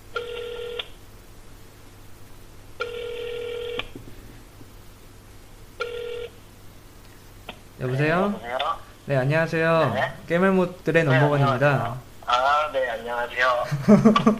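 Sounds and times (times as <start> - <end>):
telephone ringback tone: 0.1 - 0.9, 2.8 - 3.8, 5.8 - 6.4
speech: 7.8 - 12.0, 13.0 - 14.3
laughter: 13.6 - 14.3.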